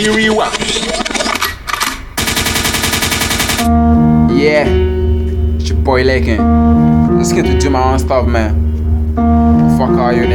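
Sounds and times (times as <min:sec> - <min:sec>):
speech: 0:00.0 - 0:01.2, 0:03.6 - 0:05.0, 0:05.8 - 0:08.6, 0:09.2 - 0:10.3
gunshot sound effect with automatic fire: 0:02.2 - 0:03.7
brief low tone: 0:03.7 - 0:10.3.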